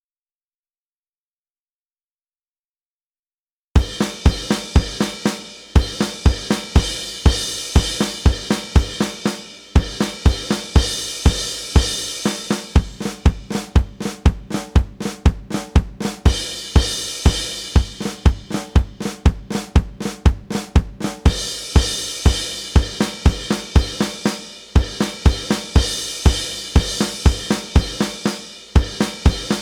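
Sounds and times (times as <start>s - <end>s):
drum kit: 3.8s - 29.6s.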